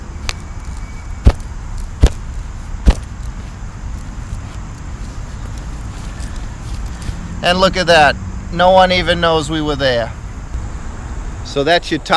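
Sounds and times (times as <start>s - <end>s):
feet stomping a grass clump into place over refilled dirt: 1.2s - 6.9s
speech: 7.4s - 10.2s, 11.5s - 12.1s.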